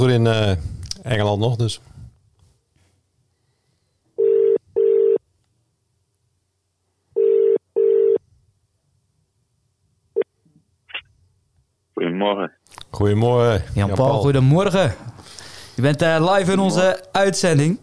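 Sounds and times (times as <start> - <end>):
speech: 0.0 - 1.9, 12.1 - 15.1, 15.8 - 17.8
telephone ringback double rings as a call tries to reach someone in England: 4.2 - 5.2, 7.2 - 8.2.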